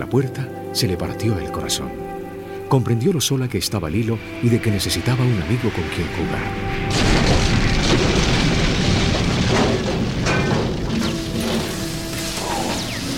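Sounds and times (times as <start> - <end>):
speech: 0.0 - 2.1, 2.7 - 8.2
dramatized spaceship crashing into a sugar cane plantation: 6.7 - 12.4
whistling and clanking tones: 9.6 - 13.1.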